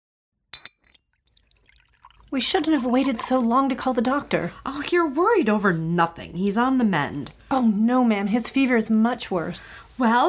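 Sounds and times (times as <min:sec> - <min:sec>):
bright clinks of glass: 0:00.6 - 0:01.0
drink gurgling as it is poured into a glass: 0:00.8 - 0:03.4
speech: 0:02.3 - 0:10.2.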